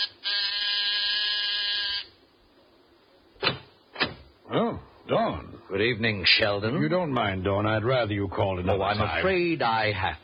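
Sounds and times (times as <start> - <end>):
harsh electric door buzzer of an apartment: 0.0 - 2.1
sharp thud or click: 3.4 - 4.3
speech: 4.5 - 10.2.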